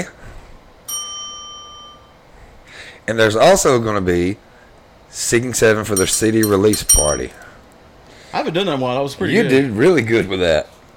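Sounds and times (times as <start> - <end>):
single bright bell strike with a clear metallic tone: 0.9 - 2.2, 6.0 - 7.4
speech: 3.1 - 4.5, 5.1 - 7.4, 8.3 - 10.7.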